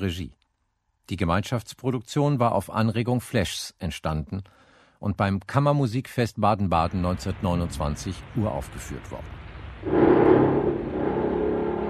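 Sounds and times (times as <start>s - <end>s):
speech: 0.0s - 0.4s, 1.1s - 10.2s
aircraft engine running: 9.9s - 11.8s.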